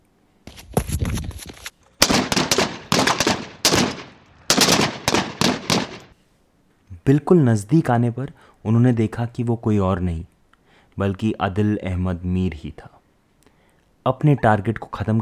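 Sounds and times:
army captain firing gunshots at a terrorist: 2.0s - 6.1s
speech: 7.1s - 10.3s, 11.0s - 13.0s, 14.0s - 15.2s.

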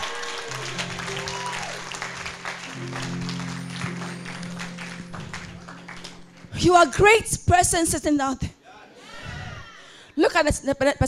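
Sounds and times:
audience clapping: 0.0s - 6.6s
sustained low keyboard chords: 0.0s - 8.0s
speech: 6.6s - 8.5s, 10.4s - 11.0s.

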